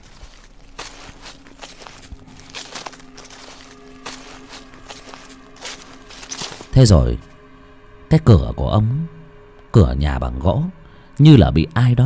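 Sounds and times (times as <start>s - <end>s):
footsteps rustling over medicinal leaves drying at the edge of a porch: 0.0s - 7.4s
speech: 6.8s - 7.3s, 8.1s - 12.0s.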